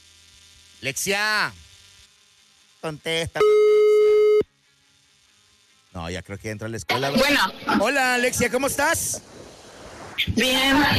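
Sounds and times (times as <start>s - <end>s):
speech: 0.8s - 1.6s, 2.8s - 3.6s, 6.0s - 9.4s, 10.2s - 10.9s
telephone tone as a call is placed: 3.4s - 4.5s.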